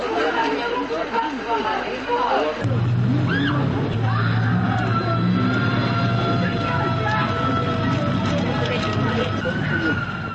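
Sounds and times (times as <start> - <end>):
loud chaotic crowd commotion with agitated voices: 0.2 - 10.3
women screaming and crying out while being beaten: 3.1 - 10.3.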